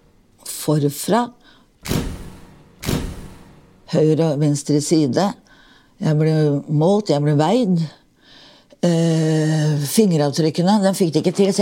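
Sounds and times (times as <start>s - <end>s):
speech: 0.7s - 2.0s, 3.9s - 8.0s, 8.8s - 11.6s
jail cell door lock clunks: 1.8s - 3.6s.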